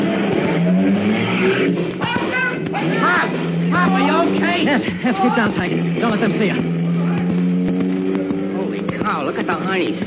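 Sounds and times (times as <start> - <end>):
car engine revving and pulling away: 0.0 - 10.0
tire screech: 0.0 - 10.0
speech: 4.5 - 6.8, 9.3 - 10.0.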